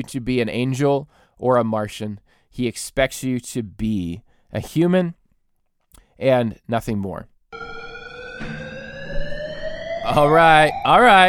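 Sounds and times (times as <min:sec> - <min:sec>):
speech: 0:00.0 - 0:05.2, 0:06.2 - 0:07.3, 0:08.4 - 0:08.6, 0:10.1 - 0:11.2
steady electronic siren wailing with rising tones: 0:07.5 - 0:11.2
brief broadband burst: 0:07.6 - 0:11.2.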